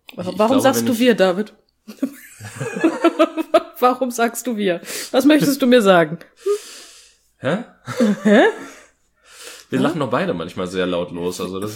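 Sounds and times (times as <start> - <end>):
speech: 0.2 - 2.1, 2.7 - 6.7, 7.4 - 8.7, 9.7 - 11.7
laughter: 1.9 - 3.8, 7.9 - 8.9
man's noisy, rasping breathing: 6.4 - 7.3, 8.6 - 9.8.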